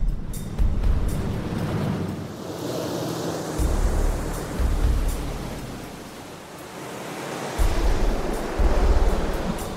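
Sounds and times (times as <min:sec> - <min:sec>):
waves washing over a kayak: 0:01.1 - 0:09.7.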